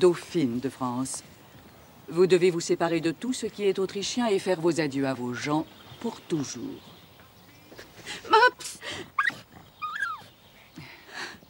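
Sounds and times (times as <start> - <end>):
speech: 0.0 - 1.4, 2.1 - 6.9
small dog whimpering: 9.2 - 10.3.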